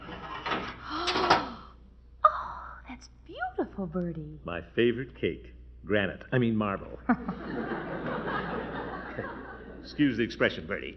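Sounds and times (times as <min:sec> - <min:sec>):
oven door hinge creaking open: 0:00.0 - 0:01.6
speech: 0:03.7 - 0:08.5, 0:09.2 - 0:10.9
laughter: 0:07.0 - 0:10.9.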